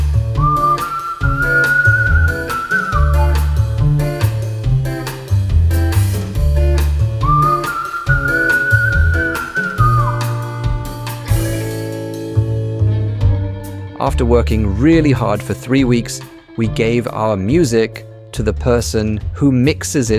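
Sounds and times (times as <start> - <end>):
busy steady guitar accompaniment: 0.0 - 20.1
playful sliding whistle swooping upward: 0.4 - 3.9, 7.2 - 10.6
speech: 14.2 - 20.1.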